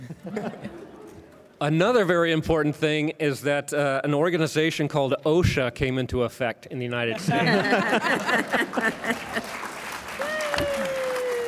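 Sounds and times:
laughter: 0.0s - 1.3s, 7.1s - 11.4s
speech: 0.2s - 0.8s, 1.6s - 9.5s
audience applause: 7.2s - 11.4s.

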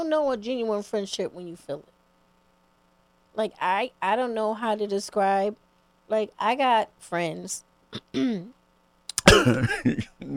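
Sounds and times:
speech: 0.0s - 1.9s, 3.4s - 8.6s, 9.3s - 10.3s
throat clearing: 8.0s - 8.5s, 9.1s - 10.3s.

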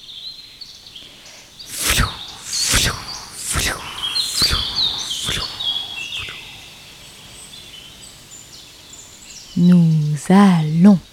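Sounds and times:
insects chirping in a meadow: 0.1s - 11.1s
swishing rustles of steps brushing through tall grass: 1.7s - 9.3s
speech: 10.3s - 11.1s.

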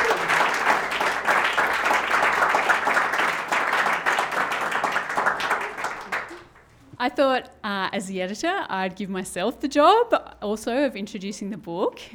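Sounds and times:
room full of people clapping: 0.0s - 6.6s
speech: 7.1s - 12.1s.

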